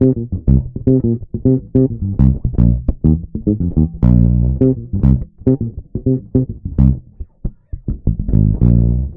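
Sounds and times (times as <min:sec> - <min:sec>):
electric bass playing funky semislap: 0:00.0 - 0:09.1.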